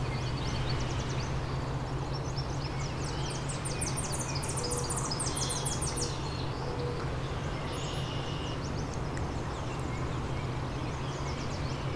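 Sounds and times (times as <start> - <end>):
Tennessee warbler singing rapid staccato trills: 0.0 - 11.9
steady low hum: 0.0 - 11.9.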